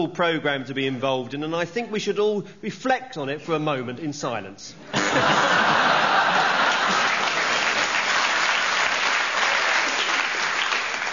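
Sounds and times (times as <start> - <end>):
speech: 0.0 - 6.0
people chuckling: 4.9 - 7.5
live audience applause: 5.4 - 11.1.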